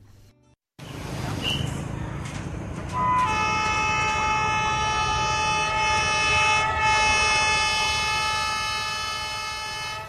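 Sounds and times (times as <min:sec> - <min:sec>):
passenger train heading to Gia Lam station rumbling: 0:00.8 - 0:10.0
passenger train horn blast: 0:02.9 - 0:10.0.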